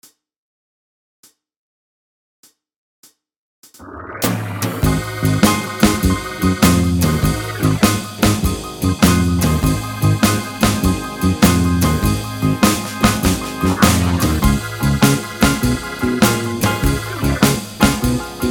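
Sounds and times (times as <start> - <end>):
tenor saxophone backing track: 4.8 - 18.4.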